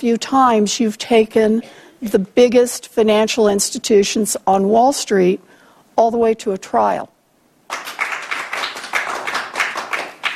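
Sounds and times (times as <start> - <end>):
speech: 0.0 - 8.0
scattered applause from a small group: 7.7 - 10.3.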